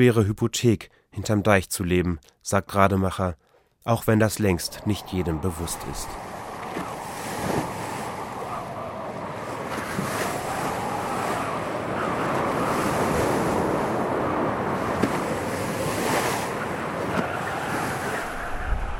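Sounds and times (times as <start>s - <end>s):
speech: 0.0s - 6.9s
strong wind roaring across the microphone at a harbour: 4.0s - 18.9s
heavy storm surge surf crashing at a harbour: 4.1s - 18.9s.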